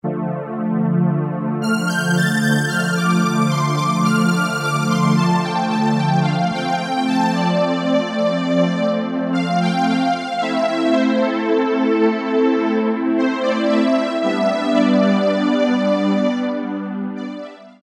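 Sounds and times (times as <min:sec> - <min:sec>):
high synthesized strings on a sound module: 0:00.1 - 0:17.7.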